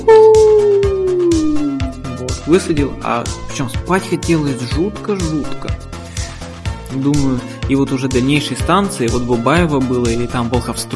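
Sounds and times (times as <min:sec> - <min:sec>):
human voice imitating a dog's howl: 0:00.0 - 0:01.9
speech: 0:02.5 - 0:05.9, 0:06.9 - 0:10.9.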